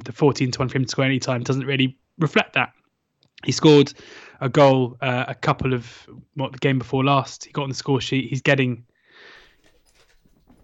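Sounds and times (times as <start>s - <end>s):
speech: 0.0s - 2.8s, 3.4s - 8.9s
excited female puppy sniffing and panting: 9.4s - 10.6s.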